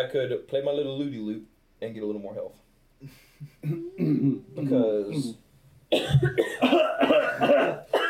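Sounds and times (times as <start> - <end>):
speech: 0.0 - 8.0
harsh raspy coughing: 3.5 - 5.3, 5.9 - 8.0.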